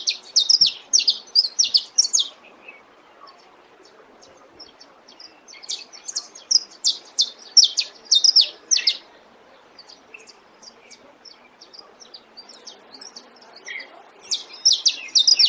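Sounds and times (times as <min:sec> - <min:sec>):
saffron finch song: 0:00.0 - 0:15.4.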